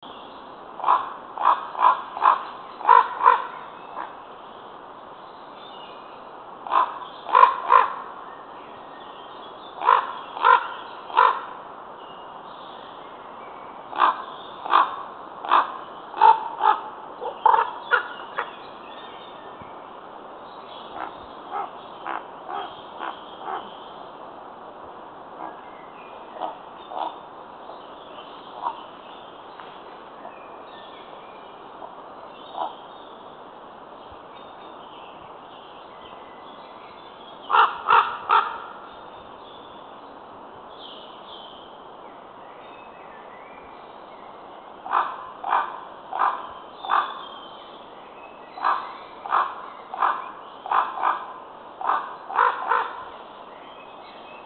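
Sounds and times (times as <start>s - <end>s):
common raven calling: 0.8s - 4.2s, 6.6s - 8.2s, 9.8s - 11.6s, 13.9s - 18.6s, 20.8s - 23.9s, 25.3s - 25.6s, 26.3s - 27.3s, 28.6s - 28.9s, 31.8s - 32.8s, 37.5s - 38.9s, 44.8s - 47.4s, 48.5s - 53.2s.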